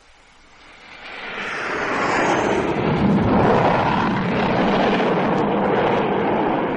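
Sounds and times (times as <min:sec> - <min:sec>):
aircraft approaching to land flying low and fast overhead on a very cold day: 0:00.0 - 0:06.7.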